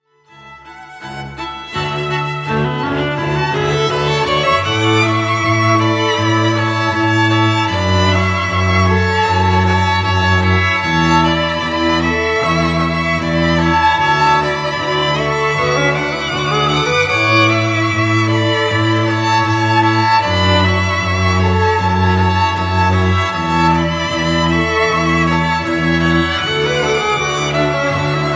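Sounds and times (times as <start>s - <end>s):
string quartet trio or duo playing: 0.0s - 28.3s.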